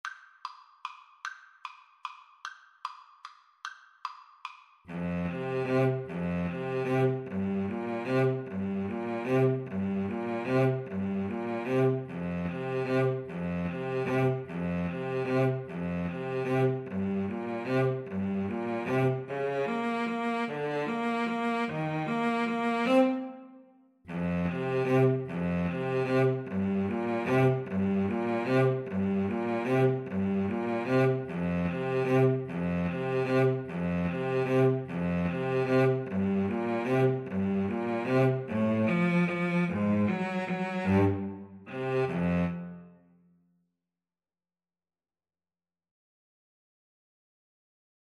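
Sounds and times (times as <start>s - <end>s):
clarinet and cello duet playing a waltz: 4.9s - 43.0s.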